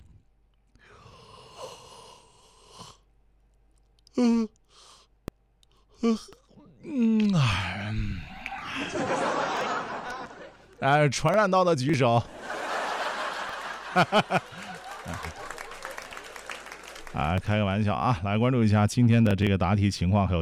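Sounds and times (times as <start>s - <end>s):
person yawning deliberately: 4.1s - 4.9s, 5.9s - 8.9s
speech: 4.2s - 4.6s, 6.0s - 7.7s, 10.8s - 12.4s, 14.0s - 14.5s, 17.2s - 20.3s
laughter: 8.4s - 10.8s, 12.2s - 17.4s.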